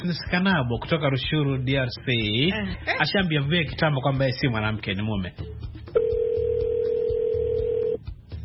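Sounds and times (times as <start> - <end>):
speech: 0.0 - 5.8
telephone call tones: 6.0 - 8.0.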